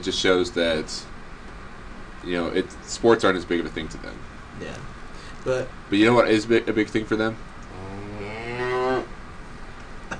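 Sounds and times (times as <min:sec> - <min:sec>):
speech: 0:00.0 - 0:01.1, 0:02.2 - 0:07.5
cow mooing with rising pitch: 0:07.7 - 0:09.2.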